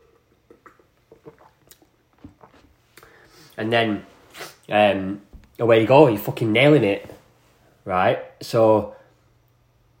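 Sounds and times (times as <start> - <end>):
person gulping juice from a 2-litre pouring jug: 0.0 - 3.2
slurping mouth sounds: 0.0 - 3.5, 4.3 - 4.7
speech: 3.6 - 4.1, 4.7 - 7.1, 7.9 - 9.0.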